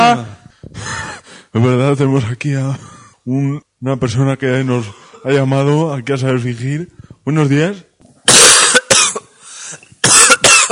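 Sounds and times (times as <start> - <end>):
speech: 0.0 - 1.0, 1.6 - 8.5
caller coughing harshly on the phone: 8.3 - 9.3, 10.0 - 10.7.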